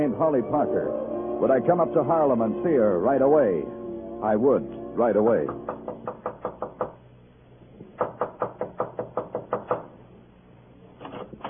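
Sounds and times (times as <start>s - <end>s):
speech: 0.0s - 5.9s
knocking on a door: 5.5s - 7.0s, 7.9s - 9.9s.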